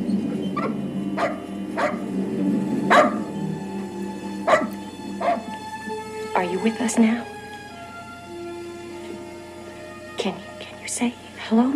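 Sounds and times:
steady low hum: 0:00.0 - 0:11.7
dog barking: 0:00.6 - 0:02.1, 0:02.9 - 0:03.4, 0:04.5 - 0:05.5
speech: 0:06.6 - 0:07.3, 0:11.0 - 0:11.7.

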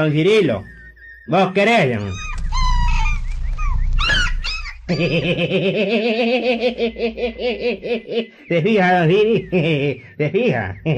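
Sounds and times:
speech: 0:00.0 - 0:02.3, 0:04.9 - 0:10.9
small dog whimpering in high wavering whines: 0:02.0 - 0:04.9
laughter: 0:04.9 - 0:10.9.

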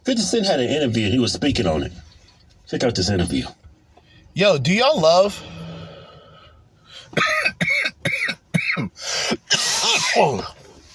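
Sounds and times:
speech: 0:00.1 - 0:02.1, 0:02.7 - 0:03.6, 0:04.4 - 0:05.6, 0:07.1 - 0:07.4, 0:08.8 - 0:09.2, 0:10.1 - 0:10.6
person coughing from smoking cannabis: 0:07.1 - 0:10.6.

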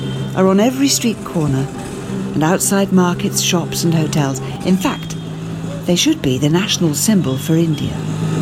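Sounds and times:
tuk-tuk two-stroke engine idling in India: 0:00.0 - 0:07.9
speech: 0:00.4 - 0:05.2, 0:05.8 - 0:08.3.

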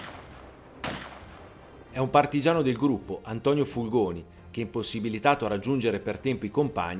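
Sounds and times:
distant warning gunshot: 0:00.0 - 0:01.6
speech: 0:02.0 - 0:06.9.

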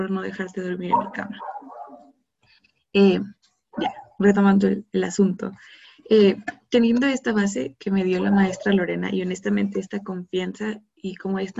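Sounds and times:
speech: 0:00.0 - 0:01.5, 0:02.9 - 0:11.5
dog barking: 0:00.9 - 0:02.1.

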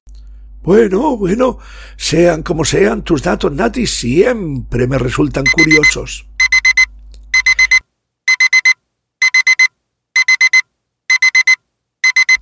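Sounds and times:
speech: 0:00.6 - 0:06.3
electronic alarm clock beeping loudly in rapid bursts: 0:05.4 - 0:12.3.

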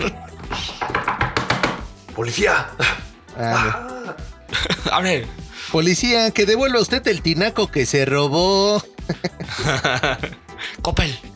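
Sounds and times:
firm knocking on a door: 0:00.5 - 0:02.0
speech: 0:02.2 - 0:11.3
laughter: 0:03.4 - 0:05.2, 0:09.1 - 0:10.5.

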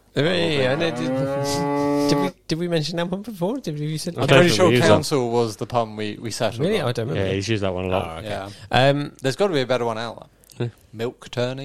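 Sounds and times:
speech: 0:00.2 - 0:11.6
long loud cow moo: 0:00.4 - 0:02.3.

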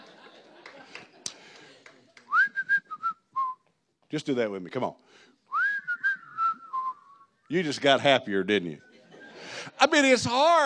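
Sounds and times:
laughter: 0:00.0 - 0:02.3, 0:08.8 - 0:10.0
person whistling a tune: 0:02.3 - 0:03.6, 0:05.5 - 0:07.5
speech: 0:04.1 - 0:05.3, 0:07.5 - 0:08.9, 0:10.0 - 0:10.6.

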